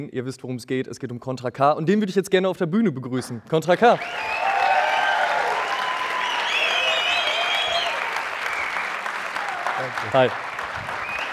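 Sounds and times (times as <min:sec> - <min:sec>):
speech: 0:00.0 - 0:04.5, 0:09.8 - 0:10.5
faint whoops and cheers from audience: 0:04.0 - 0:10.0
dense applause from a large audience at a stage event: 0:04.0 - 0:11.3.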